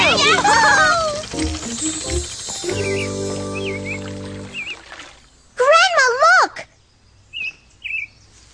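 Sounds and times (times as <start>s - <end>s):
quiet low hum: 0.0s - 5.9s
small bird chirping at an empty bird bath: 0.1s - 5.6s, 6.7s - 8.5s.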